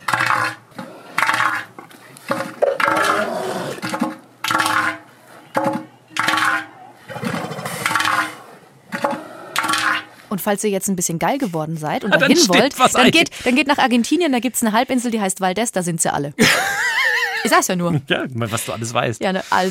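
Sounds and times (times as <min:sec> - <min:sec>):
elephant seals calling with harsh rasping pulsed bellows: 0:00.0 - 0:10.2
speech: 0:10.4 - 0:16.7, 0:17.4 - 0:19.7
laughter: 0:12.0 - 0:13.3, 0:16.4 - 0:18.2.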